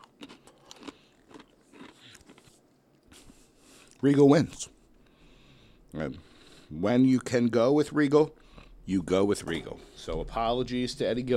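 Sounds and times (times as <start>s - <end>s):
crunchy chewing of a pretzel with chocolate hummus: 0.0s - 4.0s
speech: 4.0s - 4.8s, 6.0s - 11.3s.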